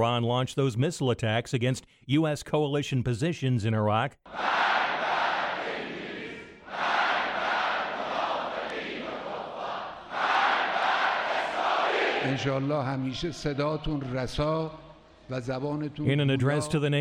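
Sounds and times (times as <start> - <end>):
speech: 0.0 - 4.7, 12.3 - 16.9
large crowd chanting in unison at a rally: 4.3 - 12.7.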